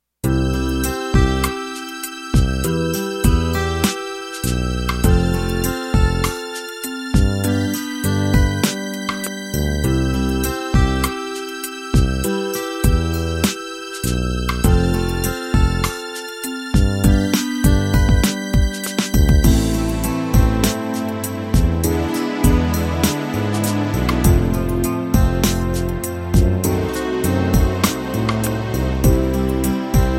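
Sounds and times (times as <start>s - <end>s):
16 beat ballad: 0.2s - 30.1s.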